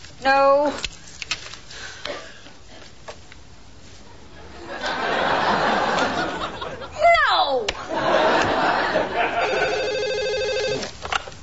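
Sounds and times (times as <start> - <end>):
speech: 0.2 - 1.0
people laughing briefly: 4.4 - 7.0, 7.8 - 10.0
telephone ringing with an electronic warble: 9.3 - 10.9.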